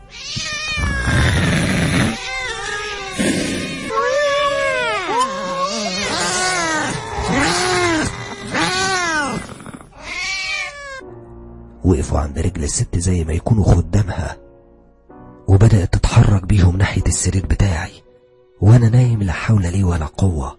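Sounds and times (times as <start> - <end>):
black cats meowing and yowling loudly: 0.0 - 11.0
speech: 12.6 - 14.4, 15.6 - 18.0, 18.6 - 20.5.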